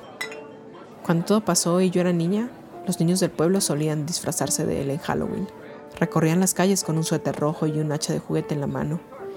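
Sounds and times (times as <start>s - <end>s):
glasses clinking in a toast: 0.0s - 0.7s
speech: 1.1s - 9.2s.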